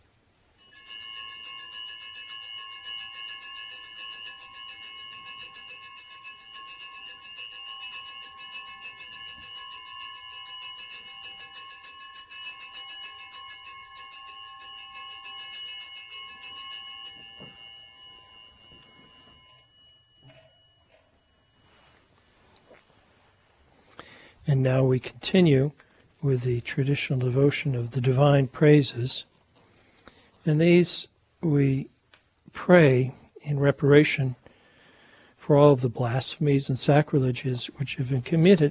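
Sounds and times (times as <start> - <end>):
altar server ringing small bells during blessing: 0.6 - 22.0
speech: 24.5 - 29.3, 30.4 - 31.9, 32.5 - 34.4, 35.5 - 38.6.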